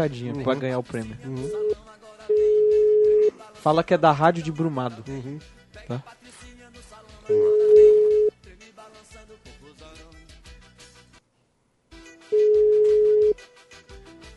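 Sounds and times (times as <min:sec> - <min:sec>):
speech: 0:00.0 - 0:01.8, 0:03.6 - 0:06.5, 0:07.3 - 0:07.9
ringback tone of an unanswered outgoing phone call: 0:01.5 - 0:03.3, 0:07.3 - 0:08.3, 0:12.4 - 0:13.4.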